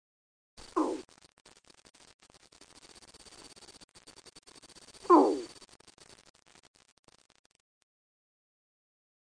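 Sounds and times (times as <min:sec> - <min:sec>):
frog giving short raspy croaks: 0:00.6 - 0:01.1, 0:05.0 - 0:05.6
faint hiss: 0:00.6 - 0:06.4.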